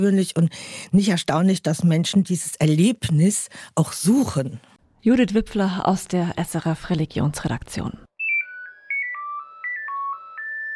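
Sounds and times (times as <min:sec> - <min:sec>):
speech: 0:00.0 - 0:08.1
Nokia 9000 Communicator mobile phone ringtone: 0:08.2 - 0:10.7.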